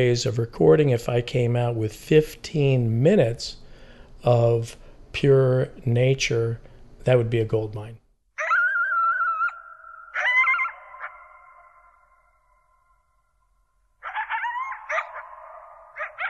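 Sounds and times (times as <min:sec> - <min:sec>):
speech: 0:00.0 - 0:03.6, 0:04.2 - 0:08.0
pack of coyotes howling and yipping: 0:08.4 - 0:13.0, 0:14.0 - 0:16.2.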